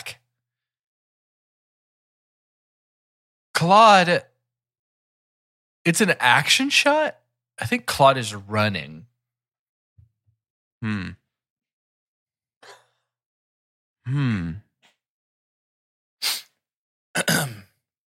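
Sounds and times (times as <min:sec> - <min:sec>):
speech: 0:03.6 - 0:04.3, 0:05.8 - 0:09.1, 0:10.8 - 0:11.2, 0:14.1 - 0:14.6, 0:17.2 - 0:17.6
person sneezing: 0:16.2 - 0:16.6.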